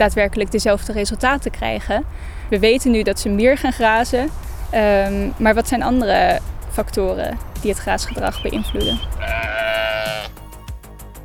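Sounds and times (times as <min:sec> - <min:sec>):
speech: 0:00.0 - 0:09.4
faint rhythmic thumps: 0:00.0 - 0:10.3
single sheep bleating: 0:08.1 - 0:10.4.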